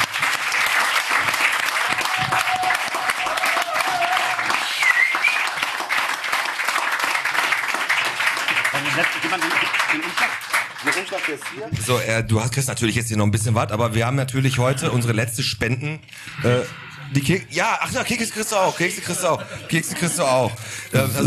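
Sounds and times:
audience applause: 0.0 - 11.8
faint whistle: 4.6 - 5.5
speech: 11.2 - 21.2
laughter: 17.9 - 21.2.

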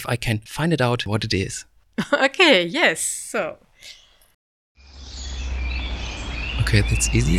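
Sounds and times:
speech: 0.0 - 4.0, 6.7 - 7.3
birds chirping in a dense outdoor chorus: 2.0 - 7.3.

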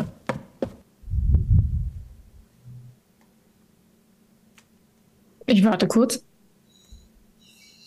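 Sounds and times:
knocking on a hotel room door: 0.0 - 0.8
speech: 5.5 - 6.3.

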